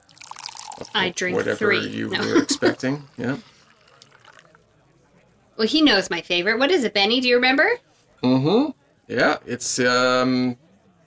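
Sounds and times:
drink pouring into a glass: 0.0s - 4.9s
speech: 0.8s - 3.5s, 5.6s - 10.6s.

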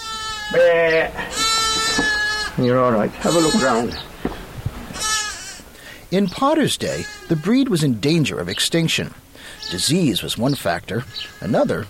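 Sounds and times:
Herdwick sheep bleating: 0.0s - 4.0s, 4.9s - 5.6s, 6.8s - 7.7s, 11.1s - 11.8s
speech: 0.5s - 4.1s, 6.1s - 11.8s.

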